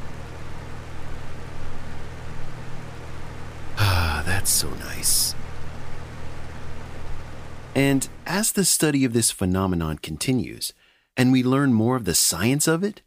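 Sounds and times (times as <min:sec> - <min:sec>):
fan running: 0:00.0 - 0:12.8
speech: 0:04.4 - 0:05.4, 0:07.8 - 0:13.0.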